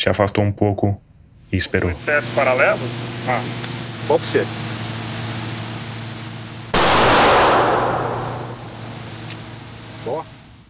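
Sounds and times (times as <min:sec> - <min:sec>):
speech: 0:00.0 - 0:04.7, 0:10.0 - 0:10.4
steady low hum: 0:00.0 - 0:10.6
revolver shot at a cardboard target at a shooting range: 0:06.8 - 0:09.3.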